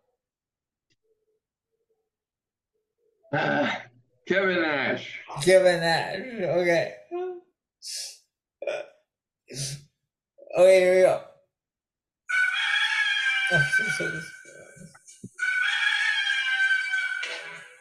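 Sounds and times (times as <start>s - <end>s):
speech: 3.3s - 7.0s, 7.8s - 8.8s, 9.5s - 9.8s, 10.5s - 11.3s, 13.5s - 14.4s
rooster crowing: 12.3s - 14.8s, 15.4s - 17.7s.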